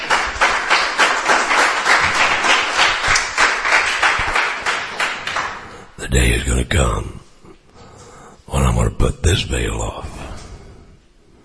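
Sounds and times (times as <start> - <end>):
crowd applauding: 0.0 - 5.8
speech: 6.1 - 7.2, 8.8 - 10.1.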